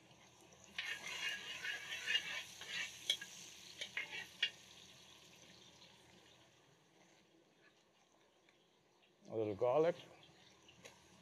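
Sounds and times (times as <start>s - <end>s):
ginger frying in hot oil: 0.0s - 7.1s
stirring scrapes: 0.8s - 4.5s
speech: 9.4s - 10.2s.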